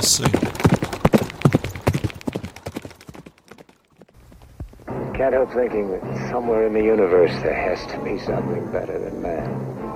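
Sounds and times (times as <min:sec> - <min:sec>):
speech: 0:00.0 - 0:00.6, 0:05.2 - 0:09.9
horse hooves clip-clopping: 0:00.0 - 0:04.9.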